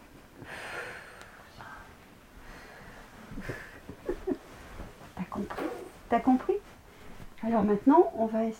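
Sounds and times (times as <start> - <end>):
person inhaling in a slow breathing exercise: 0.4 - 3.8
speech: 6.1 - 6.6, 7.4 - 8.5.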